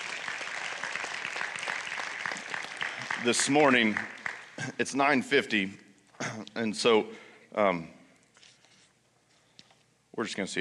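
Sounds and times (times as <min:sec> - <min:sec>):
audience applause: 0:00.0 - 0:04.7
speech: 0:03.2 - 0:08.0, 0:10.2 - 0:10.5.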